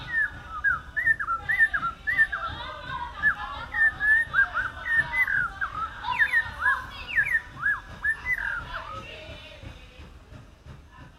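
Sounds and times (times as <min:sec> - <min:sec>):
African Thrush song in Yaoundé Cameroon: 0:00.0 - 0:09.1.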